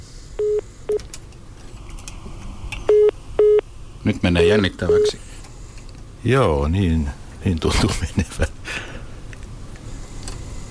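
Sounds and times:
faint hiss: 0.0 - 10.6
phone electronic keypad tones during redial: 0.4 - 1.0, 2.9 - 3.6, 4.4 - 5.2
speech: 4.1 - 5.2, 6.2 - 8.8.

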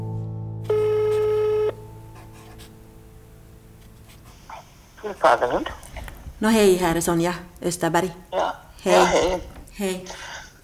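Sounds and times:
telephone ringback tone while placing a call: 0.7 - 1.8
speech: 5.0 - 5.8, 6.4 - 10.6.

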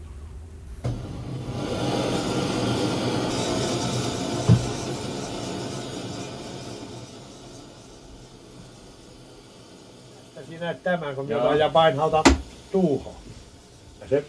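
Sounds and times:
gas burning to heat the iron of an engine: 0.0 - 14.2
speech: 10.4 - 13.2, 14.1 - 14.2
sharp knock: 12.2 - 12.5.

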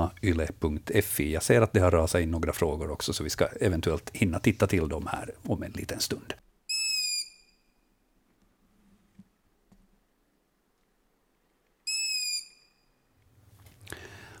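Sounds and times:
speech: 0.2 - 6.5
Long-eared Owl fledgling begging calls: 6.7 - 7.6, 11.9 - 12.7.

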